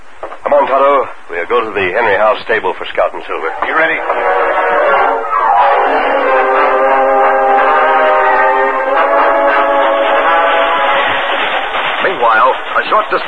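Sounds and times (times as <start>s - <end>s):
speech: 0.2s - 5.3s, 12.3s - 13.2s
speeding train rumbling past: 1.0s - 13.2s
long sustained train whistle blast: 3.5s - 11.6s.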